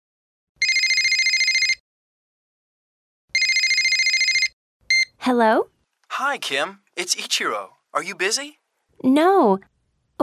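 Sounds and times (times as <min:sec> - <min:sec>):
telephone ringing with trilling electronic bursts: 0:00.6 - 0:01.8, 0:03.3 - 0:05.1
speech: 0:05.3 - 0:10.2.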